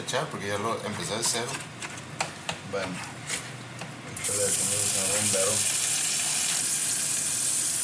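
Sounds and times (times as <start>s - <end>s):
speech: 0.0s - 1.8s, 2.7s - 3.4s, 4.3s - 5.8s
butter burning and sizzling in a pan: 4.2s - 7.8s.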